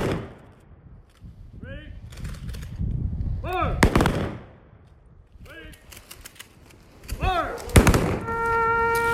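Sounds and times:
rifle volley fired on command at a memorial service: 0.0 - 0.7, 3.5 - 4.9, 5.5 - 9.0
shouted commands: 7.2 - 7.8.

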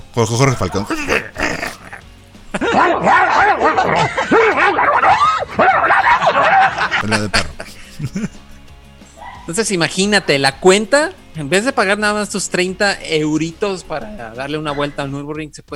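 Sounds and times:
speech: 0.2 - 1.4, 2.8 - 8.4, 9.5 - 15.7
laughter: 0.3 - 8.6
dogs barking and yelping: 2.6 - 7.0, 9.1 - 10.4, 14.5 - 15.1.

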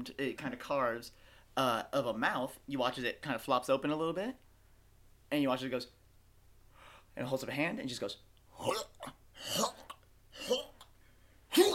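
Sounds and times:
speech: 0.0 - 4.4, 5.3 - 6.0, 7.2 - 9.8, 10.4 - 10.7
voice imitating a creature hacking up a paper catalog: 8.6 - 10.9, 11.5 - 11.7.

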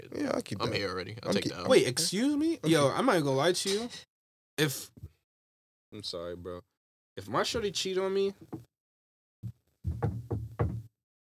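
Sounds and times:
speech: 0.2 - 5.1, 5.9 - 8.7
knocking on a hard surface: 8.4 - 8.7, 9.4 - 10.9.

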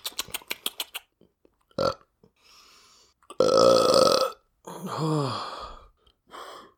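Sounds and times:
quick clicks: 0.0 - 1.1
long loud rasping burp: 1.8 - 2.0, 3.3 - 4.4
brief person grunting: 4.7 - 5.6.

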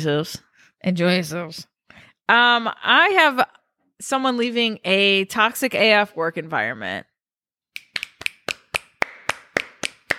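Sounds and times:
speech: 0.0 - 7.1
hands clapping in applause: 7.8 - 10.1.

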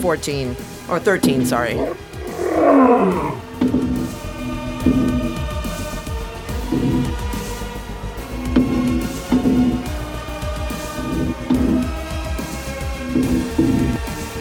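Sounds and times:
speech: 0.0 - 4.0, 4.8 - 5.1
giant lion roaring in the distance: 1.2 - 7.6, 8.5 - 10.0, 10.7 - 12.1, 13.0 - 14.1.

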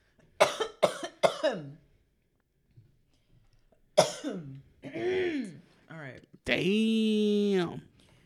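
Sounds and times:
person coughing to clear an irritated throat: 0.4 - 1.8, 4.0 - 5.6
speech: 1.5 - 1.9, 6.4 - 7.8.

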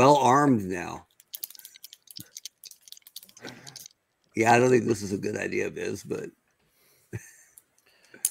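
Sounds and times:
speech: 0.0 - 1.1, 4.4 - 6.4
pen clicks: 1.2 - 3.9.

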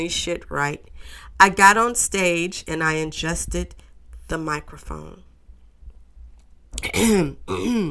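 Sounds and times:
speech: 0.0 - 5.3, 6.8 - 7.8
throat clearing: 6.8 - 7.8.

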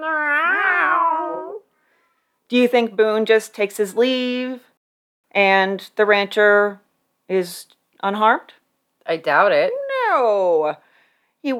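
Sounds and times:
cat meowing: 0.0 - 1.6
speech: 2.5 - 4.7, 5.3 - 10.8.

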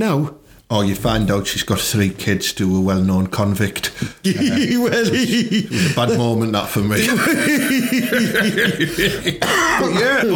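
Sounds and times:
speech: 0.0 - 10.3
laughter: 4.2 - 10.3
small dry tickly coughs: 8.8 - 10.1.

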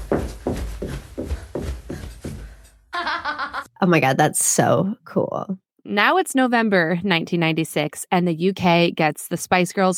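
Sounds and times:
running footsteps towards a microphone: 0.0 - 2.9
speech: 3.8 - 9.9.

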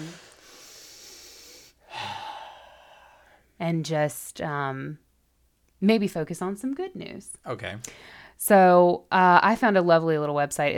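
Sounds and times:
deep cleansing breath in and out: 0.0 - 3.5, 7.9 - 8.4
speech: 3.6 - 5.0, 5.8 - 10.7.

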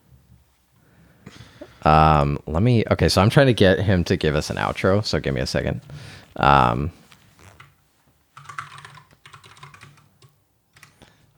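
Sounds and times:
speech: 1.8 - 7.0
typing on a computer keyboard: 8.4 - 11.0.

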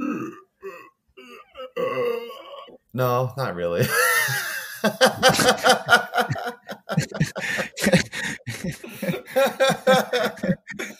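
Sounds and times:
strained belch: 0.0 - 0.6, 1.2 - 2.8
person forcing out croaky voiced burps: 0.0 - 2.9, 7.0 - 9.4, 10.2 - 10.9
speech: 3.0 - 8.8
laughter: 3.8 - 10.9.

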